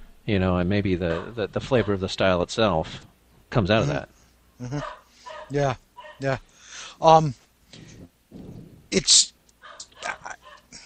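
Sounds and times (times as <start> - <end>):
speech: 0.3 - 9.4
dog giving a sharp loud bark: 1.1 - 2.0, 4.7 - 6.3, 9.6 - 10.7.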